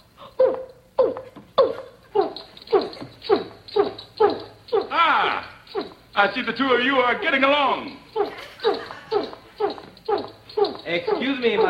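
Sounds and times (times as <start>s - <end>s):
person imitating orangutan hooting calls: 0.2s - 6.2s, 7.6s - 11.6s
speech: 6.2s - 8.0s, 10.9s - 11.6s
laughter: 8.2s - 9.6s.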